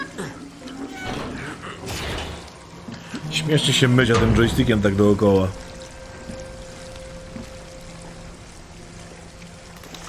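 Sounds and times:
water pouring and trickling: 0.0 - 10.0
low hum: 0.2 - 10.0
speech: 3.4 - 5.7.

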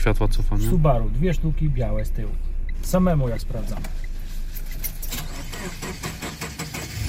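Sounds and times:
speech: 0.0 - 4.0
car engine cranking and turning over: 2.9 - 7.0.

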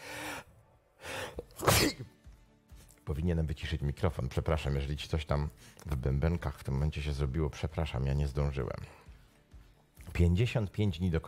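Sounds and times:
person sneezing: 1.3 - 2.1
speech: 1.4 - 2.2, 3.1 - 9.0, 10.2 - 11.2.

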